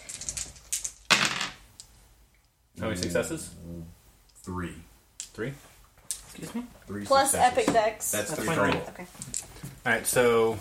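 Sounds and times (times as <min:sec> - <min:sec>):
handful of dice clattering across a hard surface in a game: 0:00.0 - 0:01.6
speech: 0:02.9 - 0:05.7, 0:06.4 - 0:10.5.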